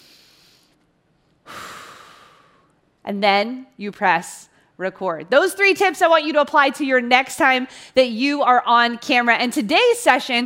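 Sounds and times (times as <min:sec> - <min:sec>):
deep breath in and sighing exhale: 0:00.0 - 0:00.8, 0:01.4 - 0:02.8
speech: 0:03.1 - 0:10.4.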